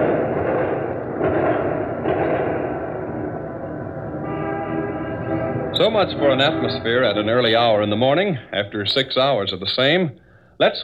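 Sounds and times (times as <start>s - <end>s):
crowd and street din of a victory celebration: 0.0s - 7.6s
sharp bangs: 0.0s - 10.0s
car horns blaring: 4.1s - 9.5s
speech: 5.8s - 10.8s.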